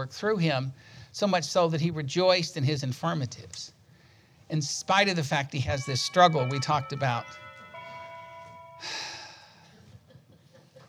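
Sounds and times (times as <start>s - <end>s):
speech: 0.0s - 3.8s, 4.5s - 7.4s, 8.8s - 9.1s
clock bell ringing: 5.0s - 9.7s
breathy rush: 5.8s - 9.8s.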